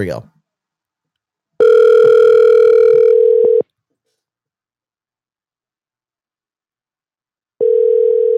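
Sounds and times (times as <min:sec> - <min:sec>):
outgoing phone call ringback tone heard through a phone over Bluetooth: 0:01.6 - 0:03.6, 0:07.6 - 0:08.3.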